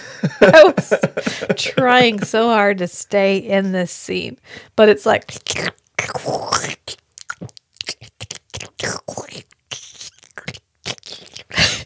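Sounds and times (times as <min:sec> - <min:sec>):
laughter: 0:00.0 - 0:02.5
speech: 0:00.2 - 0:07.0
voice imitating loud wet kissing slurps and smacks: 0:05.2 - 0:11.8.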